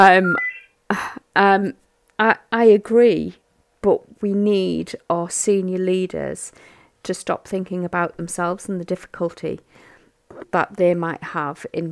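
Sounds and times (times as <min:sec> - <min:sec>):
telephone ringing with electronic tone bursts: 0:00.0 - 0:00.7
speech: 0:00.0 - 0:11.9.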